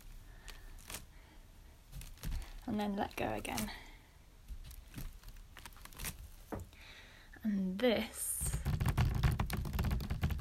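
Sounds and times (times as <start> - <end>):
speech: 2.7 - 3.9, 7.4 - 8.2
fingers drumming lightly and fast on furniture: 8.6 - 10.3.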